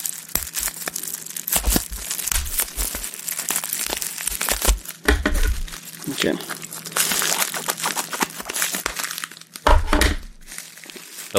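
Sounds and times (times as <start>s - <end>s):
thin bubble wrap packaging being handled and crinkled: 0.0s - 11.3s
speech: 6.1s - 6.6s.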